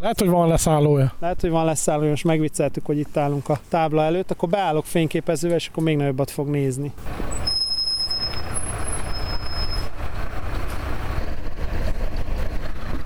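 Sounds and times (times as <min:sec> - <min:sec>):
speech: 0:00.0 - 0:07.4
high-floor intercity bus engine and road noise passing by: 0:03.0 - 0:13.0
high-floor intercity bus brakes squealing: 0:07.0 - 0:10.0.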